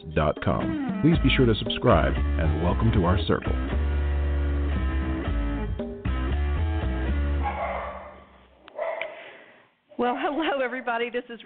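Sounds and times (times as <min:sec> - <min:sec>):
steady instrumental tune: 0:00.0 - 0:07.5
speech: 0:00.1 - 0:03.8, 0:10.0 - 0:11.4
dog barking: 0:07.4 - 0:09.3.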